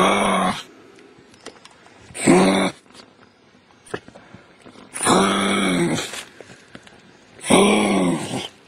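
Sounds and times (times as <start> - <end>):
kangaroo hoarse throaty grunting: 0.0 - 0.7, 2.1 - 2.9, 4.9 - 6.3, 7.4 - 8.6.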